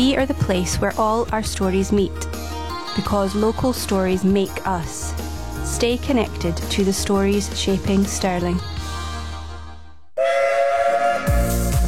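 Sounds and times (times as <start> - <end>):
speech: 0.1 - 8.8
steam locomotive whistle: 10.2 - 11.8.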